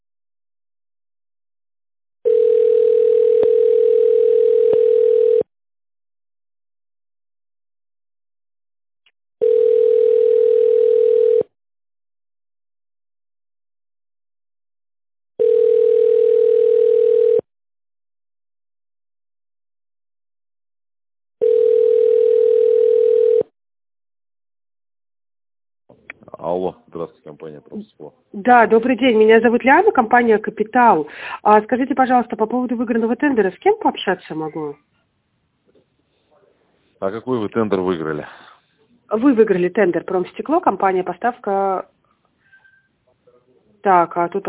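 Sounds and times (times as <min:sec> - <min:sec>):
telephone line tone after automated voice menu: 0:02.3 - 0:05.4, 0:09.4 - 0:11.5, 0:15.4 - 0:17.4, 0:21.4 - 0:23.5
speech: 0:28.4 - 0:34.9, 0:37.0 - 0:38.5, 0:39.1 - 0:41.9, 0:43.8 - 0:44.4.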